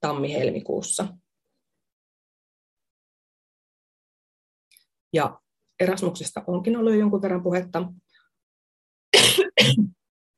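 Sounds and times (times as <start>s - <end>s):
speech: 0.0s - 1.2s, 5.1s - 8.0s
person coughing: 9.2s - 10.0s.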